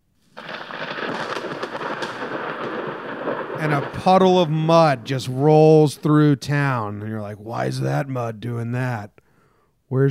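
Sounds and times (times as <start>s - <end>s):
thunder crack and rumble: 0.4s - 7.3s
speech: 3.6s - 9.2s.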